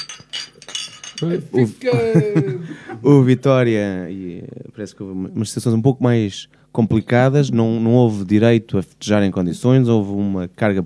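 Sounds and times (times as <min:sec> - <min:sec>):
glasses clinking in a toast: 0:00.0 - 0:01.6
speech: 0:01.2 - 0:10.8
laughter: 0:01.8 - 0:03.0.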